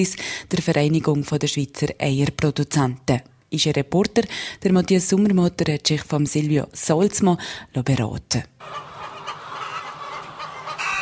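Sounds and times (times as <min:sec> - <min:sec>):
speech: 0:00.0 - 0:08.9
laying hens clucking in a poultry barn on a Swiss egg farm: 0:08.6 - 0:11.0.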